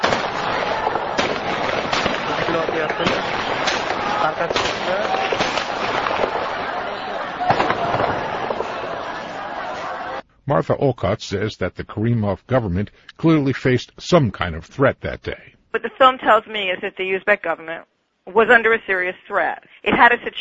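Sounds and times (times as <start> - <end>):
gunshots: 0.0 - 9.3
agitated crowd noise: 0.0 - 10.2
speech: 2.6 - 3.4, 4.2 - 5.4, 10.5 - 20.3.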